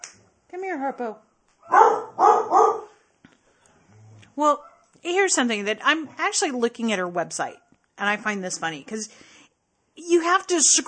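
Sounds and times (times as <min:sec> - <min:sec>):
speech: 0:00.7 - 0:02.6, 0:04.4 - 0:09.3, 0:10.0 - 0:10.8
dog barking: 0:01.6 - 0:03.0.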